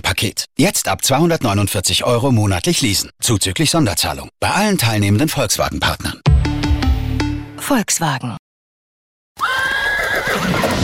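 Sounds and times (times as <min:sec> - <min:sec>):
speech: 0:00.1 - 0:06.3, 0:07.7 - 0:08.4
loud horse neighing: 0:09.4 - 0:10.7.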